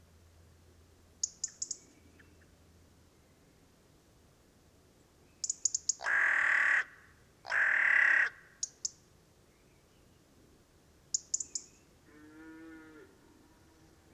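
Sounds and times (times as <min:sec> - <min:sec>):
carrion crow cawing: 0:06.0 - 0:08.5.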